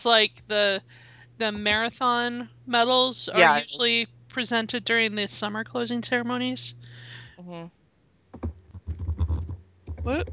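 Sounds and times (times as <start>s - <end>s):
speech: 0.0s - 7.8s, 10.0s - 10.3s
brief hum of a voice: 3.3s - 3.9s
typing on a computer keyboard: 8.4s - 10.3s.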